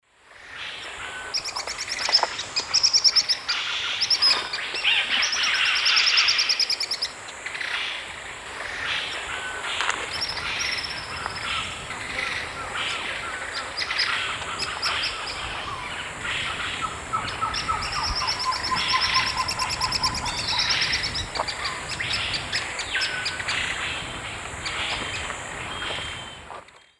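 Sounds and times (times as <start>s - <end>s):
pair of Chelidoptera tenebrosa birds singing or calling in South American eastern lowlands: 0.4s - 26.9s.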